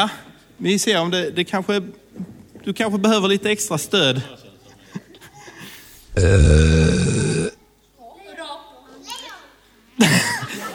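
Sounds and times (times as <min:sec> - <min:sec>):
speech: 0:00.0 - 0:04.5, 0:06.2 - 0:07.3
long loud deep burp: 0:06.1 - 0:07.6
laughter: 0:10.0 - 0:10.7.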